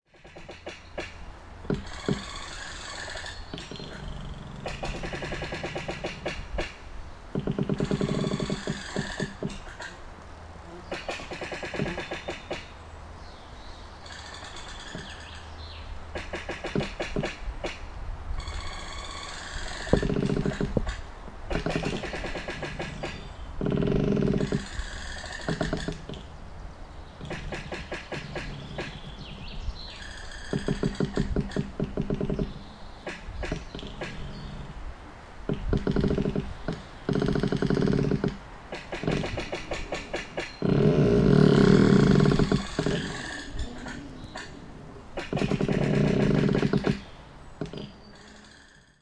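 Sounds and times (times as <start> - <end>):
fallen needle trees rubbing against another in the forest: 0.1 - 49.0.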